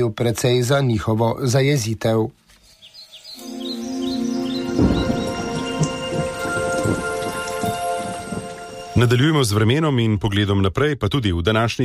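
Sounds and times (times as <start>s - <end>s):
speech: 0.0s - 2.4s, 9.0s - 11.8s
steady dense rain pouring down: 3.4s - 9.2s
low rolls of thunder rumbling: 3.8s - 9.3s.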